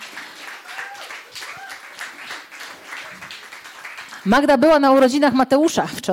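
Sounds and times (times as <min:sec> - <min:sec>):
crowd clapping: 0:00.0 - 0:05.1
whoops and high cheers: 0:00.5 - 0:02.2, 0:02.8 - 0:03.4
speech: 0:04.2 - 0:06.1.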